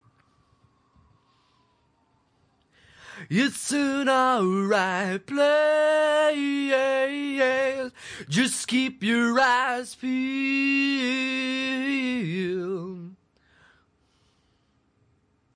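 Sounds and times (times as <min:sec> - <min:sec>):
man singing a cappella at 180 bpm: 0:03.1 - 0:13.2.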